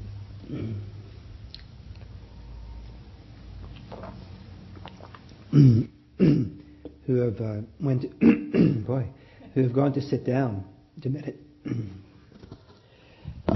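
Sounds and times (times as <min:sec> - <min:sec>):
person clearing throat: 0:00.5 - 0:00.9, 0:05.5 - 0:06.6, 0:08.2 - 0:08.9, 0:11.6 - 0:12.1
speech: 0:05.5 - 0:05.9, 0:07.1 - 0:12.0.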